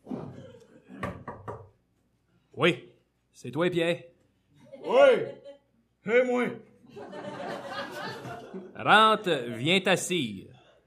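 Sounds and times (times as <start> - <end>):
knocks on a wooden door: 1.0 - 1.7
speech: 2.6 - 4.1, 4.8 - 5.4, 6.0 - 7.3, 8.8 - 10.5
laughter: 4.6 - 5.8, 6.8 - 9.9.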